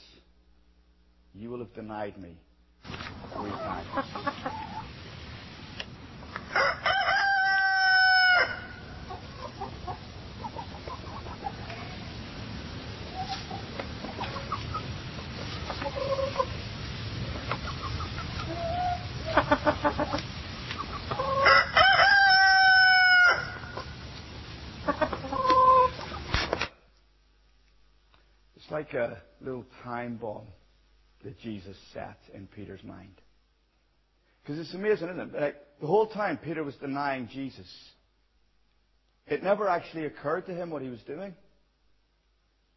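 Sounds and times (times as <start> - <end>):
speech: 1.4 - 2.5, 3.3 - 4.4, 28.9 - 30.6, 31.2 - 33.3, 34.4 - 38.0, 39.3 - 41.4
scattered farmyard bird sounds: 2.9 - 26.6
softer clucking: 3.1 - 5.0, 6.5 - 12.2, 13.0 - 24.0, 24.8 - 26.4
rooster crowing: 6.5 - 9.0, 21.2 - 23.9.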